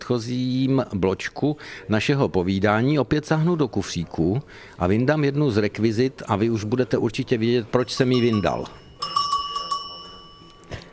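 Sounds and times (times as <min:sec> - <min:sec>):
speech: 0:00.1 - 0:08.8
Swiss cowbell shaken and clanking: 0:07.8 - 0:10.9.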